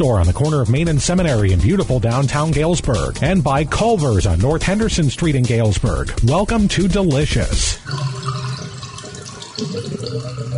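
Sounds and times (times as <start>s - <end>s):
speech: 0.0s - 8.3s, 9.6s - 10.5s
water running down household drains: 5.8s - 10.5s.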